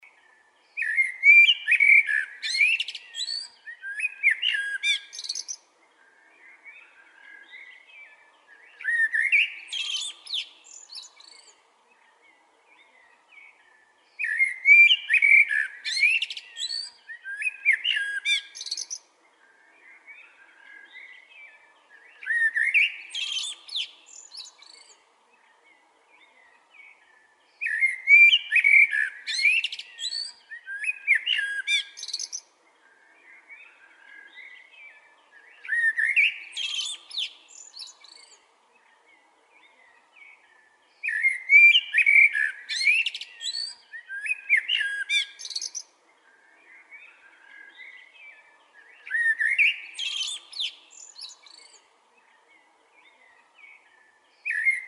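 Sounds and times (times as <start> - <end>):
blackbird: 0.0 - 54.8.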